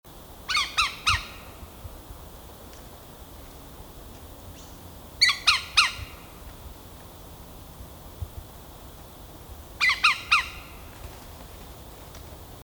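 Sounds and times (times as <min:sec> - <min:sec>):
green woodpecker call: 0:00.5 - 0:01.6, 0:04.5 - 0:06.3, 0:09.8 - 0:10.9.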